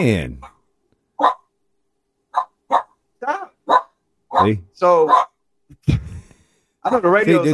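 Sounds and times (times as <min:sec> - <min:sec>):
speech: 0:00.0 - 0:00.5, 0:04.4 - 0:05.2, 0:06.8 - 0:07.5
dog barking: 0:01.2 - 0:01.5, 0:02.3 - 0:03.0, 0:03.6 - 0:05.4.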